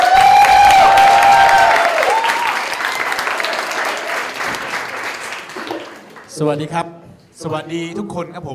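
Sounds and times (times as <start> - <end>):
people whooping: 0.0 - 4.5
crowd applauding: 0.0 - 6.4
speech: 6.4 - 8.5.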